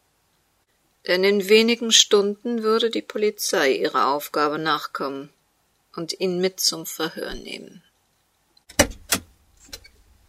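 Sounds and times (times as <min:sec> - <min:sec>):
speech: 0:01.0 - 0:05.4, 0:06.0 - 0:07.9
sharp knocks: 0:08.7 - 0:09.8
car door opening and shutting as a woman gets out: 0:08.7 - 0:09.9.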